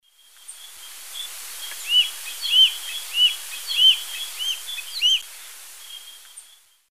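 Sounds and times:
Elanoides forficatus flight calls in the Eastern Lowlands of S. America: 0:01.2 - 0:05.2.

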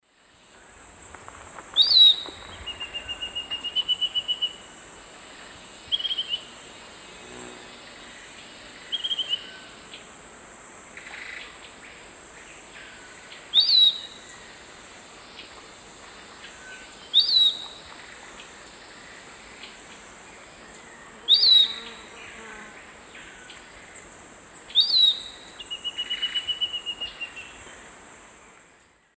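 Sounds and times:
Legatus leucophaius song in South American Eastern Lowlands: 0:01.7 - 0:04.7, 0:05.9 - 0:06.5, 0:07.4 - 0:10.0, 0:12.4 - 0:14.6, 0:16.4 - 0:27.8.

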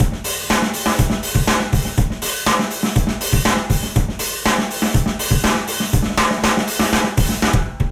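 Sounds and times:
alt rock drums: 0:00.0 - 0:07.8.

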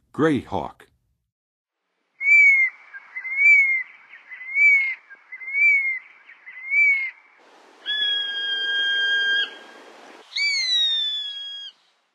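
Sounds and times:
Gray Hawk calling in the Western USA: 0:02.2 - 0:07.2, 0:07.8 - 0:11.8.

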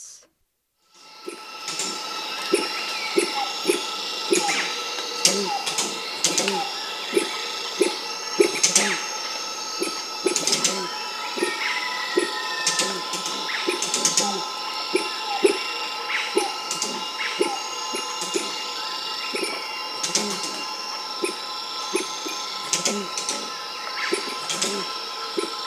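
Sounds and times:
feline night monkey calling in a South American rainforest: 0:01.3 - 0:25.6.

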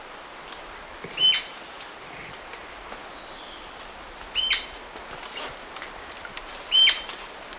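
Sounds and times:
Onychorhynchus coronatus calls: 0:01.0 - 0:05.6, 0:06.7 - 0:07.3.

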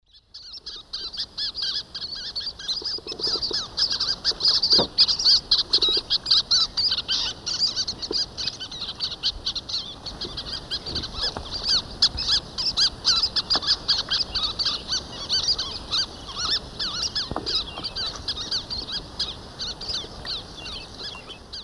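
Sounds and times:
Sternula superciliaris flight calls in the Eastern Lowlands of South America: 0:00.1 - 0:21.6.

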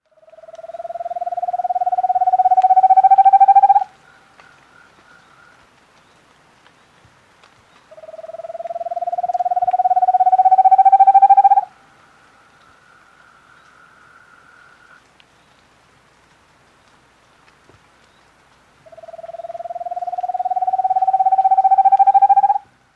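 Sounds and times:
Undulated Antpitta calling in South America: 0:00.2 - 0:05.3, 0:07.9 - 0:11.7, 0:18.9 - 0:22.7.

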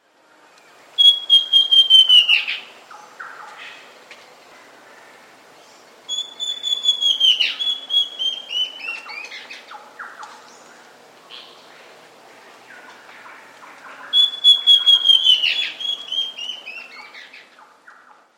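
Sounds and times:
Southern Chestnut-Tailed Antbird in South America: 0:01.0 - 0:03.9, 0:06.1 - 0:10.6, 0:12.7 - 0:18.1.

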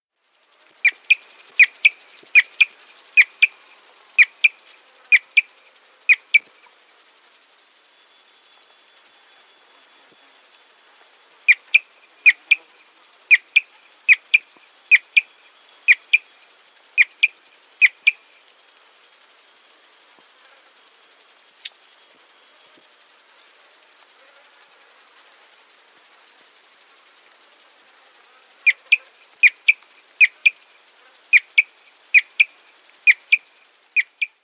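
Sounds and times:
Marsh Antbird from South America: 0:00.7 - 0:06.7, 0:11.5 - 0:16.3, 0:28.6 - 0:30.6, 0:31.3 - 0:34.4.

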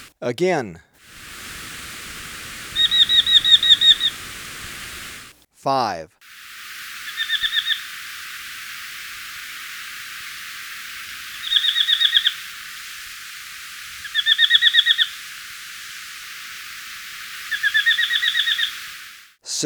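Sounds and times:
speech: 0:00.2 - 0:01.3, 0:05.6 - 0:06.2
steady hiss: 0:01.0 - 0:05.5, 0:06.2 - 0:19.4
Paramo tapaculo calling in clipped bursts in Ecuador: 0:02.4 - 0:05.3, 0:06.9 - 0:08.9, 0:10.2 - 0:15.6, 0:16.2 - 0:19.4.

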